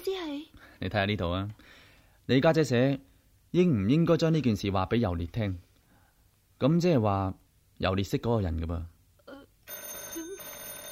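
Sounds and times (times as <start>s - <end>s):
speech: 0.0s - 5.6s, 6.6s - 8.9s
telephone ringing: 9.7s - 10.8s.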